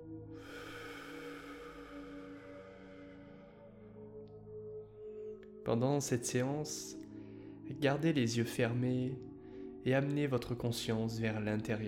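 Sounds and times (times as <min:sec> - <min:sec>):
humming musical drone: 0:00.0 - 0:10.6
breathy exhale during a guided meditation: 0:00.3 - 0:04.1
speech: 0:05.6 - 0:07.0, 0:07.8 - 0:11.8.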